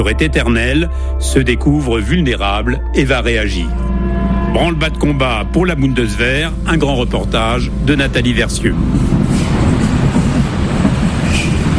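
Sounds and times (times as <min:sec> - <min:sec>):
speech: 0:00.0 - 0:09.4
subway train pulling away from a station in Berlin Germany: 0:03.8 - 0:11.7
brief higher rail squeal: 0:08.9 - 0:11.7.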